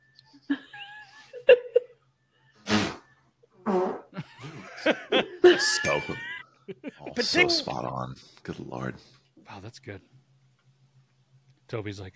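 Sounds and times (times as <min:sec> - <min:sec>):
voice blowing sputtering bursts in imitation of a fart: 0:02.6 - 0:04.2
laughter: 0:04.2 - 0:07.8
speech: 0:07.2 - 0:10.2, 0:11.7 - 0:12.1.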